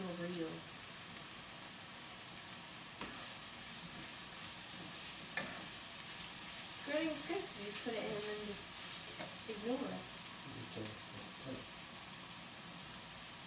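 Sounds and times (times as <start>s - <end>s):
food sizzling while frying in a pan: 0.0s - 13.4s
speech: 7.0s - 8.8s, 9.5s - 11.8s.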